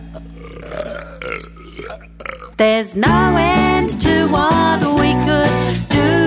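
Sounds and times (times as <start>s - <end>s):
long rumbling croaky burp: 0.0s - 2.7s
speech: 1.3s - 6.1s.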